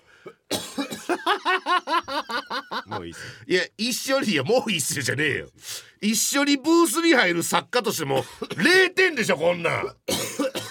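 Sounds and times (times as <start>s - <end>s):
person coughing from allergy: 0.2s - 1.2s, 8.2s - 8.7s, 9.6s - 10.6s
laughter: 1.1s - 3.2s
speech: 2.9s - 10.1s.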